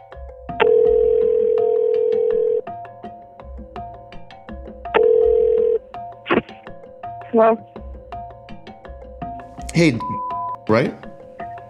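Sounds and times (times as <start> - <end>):
phone line clicks and hum: 0.6 - 2.6, 5.0 - 6.5
telephone ringing tone through a phone line: 0.6 - 2.6, 5.0 - 5.8
speech: 7.3 - 7.7, 9.8 - 11.1.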